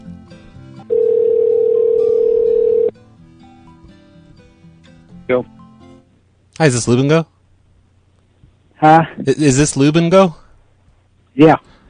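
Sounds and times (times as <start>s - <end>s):
steady telephone dial tone: 0.9s - 2.9s
speech: 5.3s - 5.5s, 6.6s - 7.4s, 8.8s - 10.4s, 11.4s - 11.8s.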